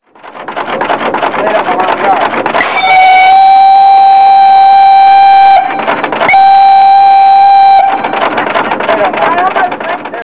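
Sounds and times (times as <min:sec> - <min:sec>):
fast toots: 0:01.4 - 0:09.6.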